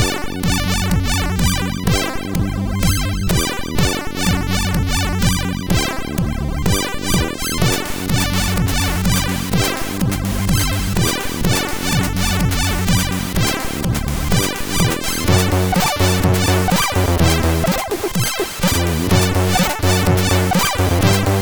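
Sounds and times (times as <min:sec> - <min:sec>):
chiptune music on a MOS6581R4 SID chip: 0:00.0 - 0:21.4.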